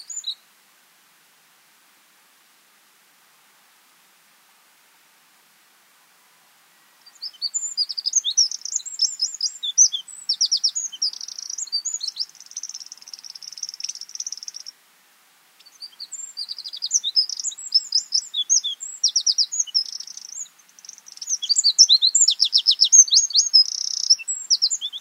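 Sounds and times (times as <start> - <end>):
Eurasian wren Troglodytes troglodytes singing fast trilling phrases: 0.0 - 0.4, 7.0 - 14.8, 15.6 - 24.9.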